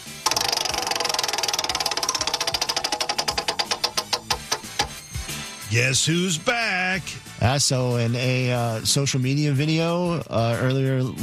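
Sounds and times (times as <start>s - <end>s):
prize wheel spinning and clicking: 0.0s - 5.1s
speech: 5.7s - 11.2s.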